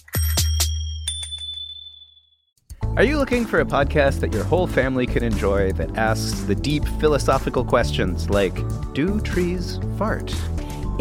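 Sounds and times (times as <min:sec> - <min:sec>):
bicycle bell ringing: 0:00.0 - 0:02.5
speech: 0:03.0 - 0:10.9.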